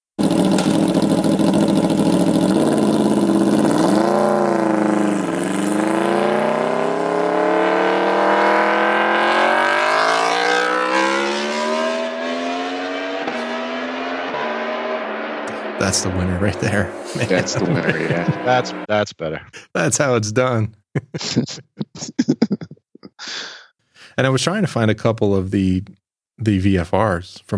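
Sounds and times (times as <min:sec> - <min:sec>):
Aprilia motorcycle engine with loud aftermarket exhaust revving: 0:00.2 - 0:18.9
laughter: 0:15.5 - 0:18.9, 0:20.9 - 0:23.2
speech: 0:15.9 - 0:22.6, 0:24.2 - 0:27.5.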